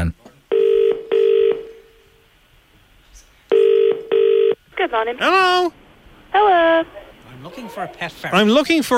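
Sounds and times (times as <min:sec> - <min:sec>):
telephone ringing tone heard down the line: 0:00.5 - 0:01.7, 0:03.5 - 0:04.6
speech: 0:04.9 - 0:08.9.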